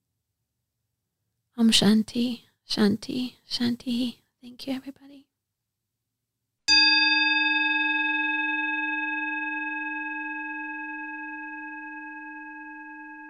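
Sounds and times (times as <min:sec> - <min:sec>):
speech: 0:01.6 - 0:05.2
meditation bell ringing: 0:06.7 - 0:13.2.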